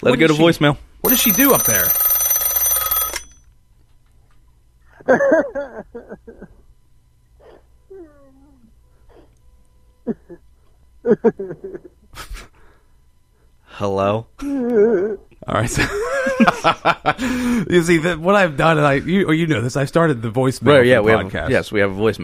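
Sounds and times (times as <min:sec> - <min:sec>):
speech: 0:00.0 - 0:02.1, 0:05.0 - 0:06.6, 0:10.1 - 0:10.4, 0:11.0 - 0:11.9, 0:13.8 - 0:22.2
old rotary telephone bell ringing: 0:01.0 - 0:03.5
laughter: 0:04.9 - 0:06.6, 0:11.0 - 0:12.5, 0:14.4 - 0:17.6.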